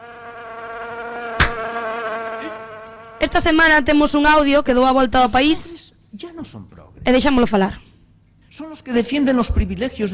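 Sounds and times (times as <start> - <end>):
fly buzzing: 0.0 - 3.8
short sharp tap: 1.4 - 1.6
speech: 3.2 - 7.8, 8.5 - 10.1.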